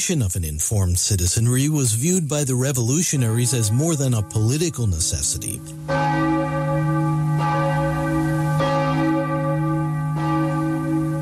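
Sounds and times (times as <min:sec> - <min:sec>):
speech: 0:00.0 - 0:07.6
large bronze bell tolling: 0:02.8 - 0:11.2.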